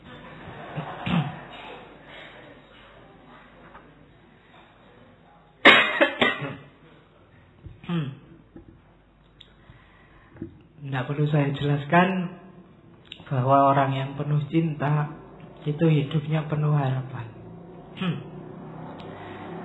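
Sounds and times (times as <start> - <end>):
audience members coughing at a philosophy study gathering: 0.0 - 2.6, 5.6 - 6.8
laughter: 0.0 - 3.4
speech: 11.0 - 12.4, 13.3 - 17.3, 18.0 - 18.3.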